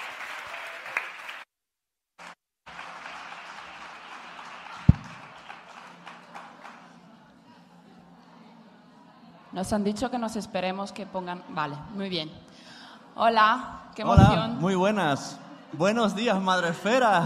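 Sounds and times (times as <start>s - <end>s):
audience applause: 0.0s - 1.5s, 2.2s - 7.1s
speech: 9.6s - 17.2s.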